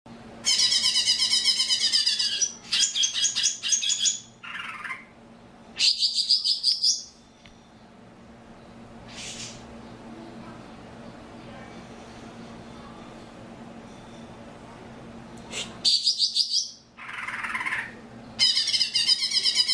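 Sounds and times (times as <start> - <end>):
Oriental magpie-robin song with rasping bursts and scratchy phrase: 0.4 - 10.1, 15.9 - 19.7.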